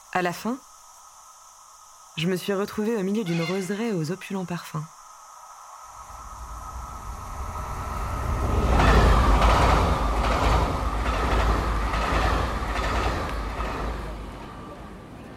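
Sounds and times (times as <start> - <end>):
speech: 0.1 - 0.7, 2.2 - 5.0
train rumbling past in a train station: 5.9 - 15.3
train wheels clacking over the rail joints: 8.6 - 15.3.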